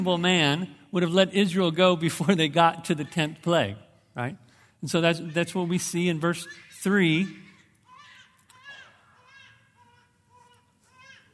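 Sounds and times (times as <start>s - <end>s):
speech: 0.0s - 7.4s
newborn baby crying in short wails: 5.2s - 11.3s.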